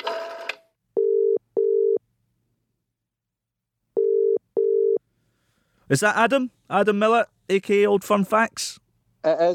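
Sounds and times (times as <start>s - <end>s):
telephone ringback tone while a call connects: 0.2s - 2.0s, 4.0s - 5.0s
speech: 5.9s - 9.5s.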